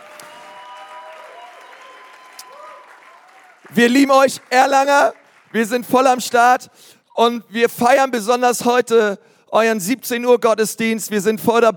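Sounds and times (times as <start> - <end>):
faint cheers and whoops: 0.0 - 3.6
church audience in Nuremberg applauding: 0.0 - 6.6
speech: 3.7 - 11.7.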